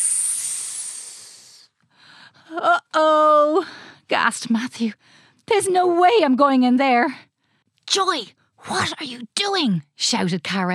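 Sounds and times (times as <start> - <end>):
large coiled snake hissing: 0.0 - 1.7
speech: 2.5 - 7.3, 7.9 - 10.7.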